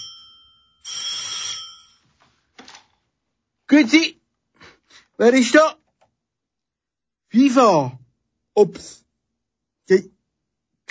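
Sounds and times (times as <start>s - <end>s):
telephone ringing with a bright metallic bell: 0.0s - 2.2s
speech: 3.7s - 4.2s, 5.2s - 5.8s, 7.4s - 8.0s, 8.6s - 9.0s, 9.9s - 10.2s.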